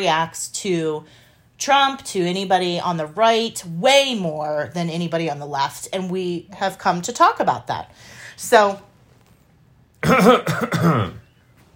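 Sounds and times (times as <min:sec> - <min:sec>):
speech: 0:00.0 - 0:08.9, 0:10.0 - 0:11.2
person clearing throat and coughing with something caught in the throat: 0:10.0 - 0:11.3.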